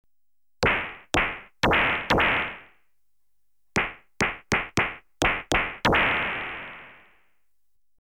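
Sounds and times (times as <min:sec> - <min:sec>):
electronically generated stun gun rapid single shots: 0:00.6 - 0:02.7, 0:03.8 - 0:07.1.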